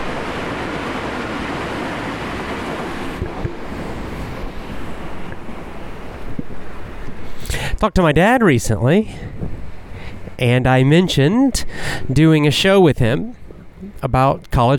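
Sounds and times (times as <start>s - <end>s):
train rumbling past a station: 0.0s - 6.9s
speech: 7.8s - 9.4s, 10.4s - 14.7s.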